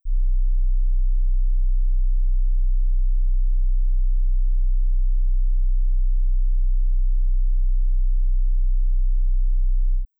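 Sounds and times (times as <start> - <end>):
31.5 Hz sine wave tone: 0.0 - 10.1.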